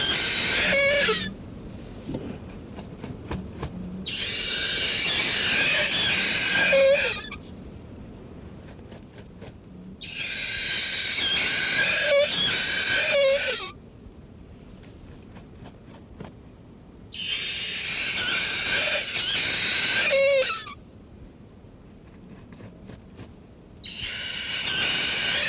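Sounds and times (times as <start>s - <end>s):
kakapo producing grating hoarse screeches: 0.0s - 1.4s, 4.1s - 7.4s, 10.0s - 13.8s, 17.1s - 20.8s, 23.8s - 25.4s.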